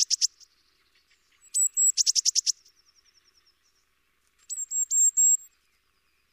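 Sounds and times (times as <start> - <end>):
Eurasian blue tit calling, Cyanistes caeruleus: 0.0 - 2.7, 4.5 - 5.5.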